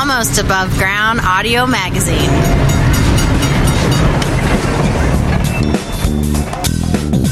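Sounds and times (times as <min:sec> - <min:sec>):
speech: 0:00.0 - 0:02.8
heavy train wheels clacking over rails: 0:00.0 - 0:07.3
train rolling past at railway museum in Illinois: 0:00.0 - 0:07.3.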